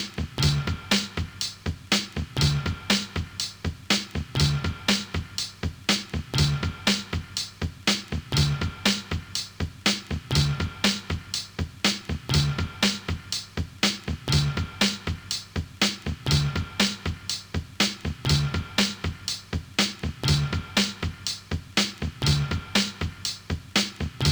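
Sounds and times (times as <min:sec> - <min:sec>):
drum break at 121 bpm: 0:00.0 - 0:24.3.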